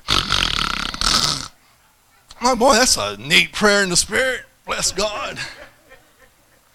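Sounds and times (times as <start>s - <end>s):
man's voice imitating snoring: 0.0s - 1.6s
speech: 2.4s - 5.7s
laughter: 4.7s - 6.7s.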